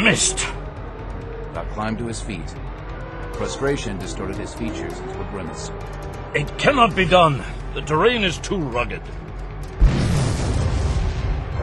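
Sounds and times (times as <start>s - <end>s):
speech: 0.1s - 0.6s, 1.8s - 2.7s, 3.3s - 9.3s
deep explosion boom: 9.8s - 11.6s.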